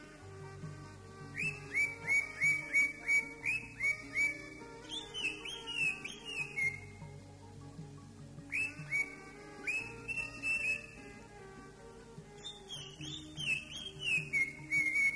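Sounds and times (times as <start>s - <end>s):
greater green leafbird giving short down-slurred whistled notes: 1.3s - 7.0s, 8.5s - 11.0s, 12.4s - 15.1s.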